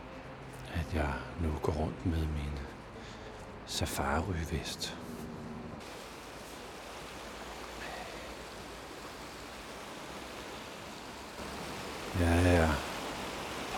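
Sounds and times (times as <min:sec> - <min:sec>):
speech: 0:00.9 - 0:02.7, 0:03.7 - 0:05.2
water rushing through a sluice: 0:05.8 - 0:13.7.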